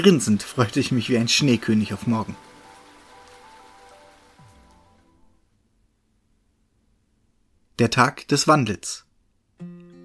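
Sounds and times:
speech: 0.0 - 2.4, 7.8 - 9.7
steady dense rain falling: 0.0 - 5.4.

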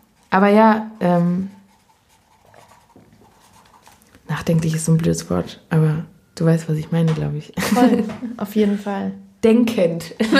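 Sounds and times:
pen writing a word: 0.0 - 5.0
speech: 0.3 - 1.6, 4.3 - 10.3
laughter: 7.6 - 8.4.

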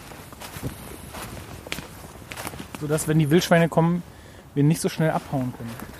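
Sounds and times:
footsteps crunching through forest ground at the Berlin city limits: 0.0 - 4.0, 4.6 - 5.9
soft rustling of leaves and twigs underfoot: 0.0 - 5.9
speech: 2.8 - 5.9.

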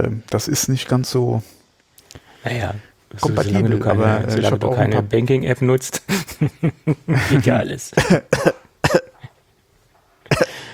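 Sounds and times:
speech: 0.0 - 8.6
laughter: 6.1 - 7.6
person coughing harshly and throatily: 8.0 - 9.3, 10.3 - 10.7.

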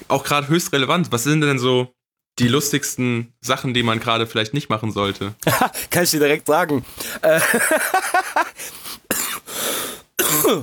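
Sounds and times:
speech: 0.1 - 9.0, 10.5 - 10.6
laughter: 5.4 - 6.0, 7.2 - 8.6
person coughing with harsh throat-clearing rasps: 9.1 - 9.6, 10.2 - 10.6.

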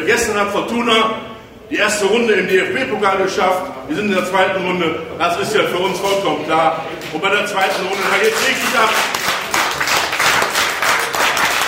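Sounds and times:
speech: 0.1 - 9.2
crowd applause: 7.6 - 11.6.

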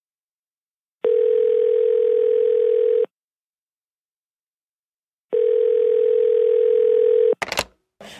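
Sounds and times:
telephone tone before a phone call: 1.0 - 3.1, 5.3 - 7.4.

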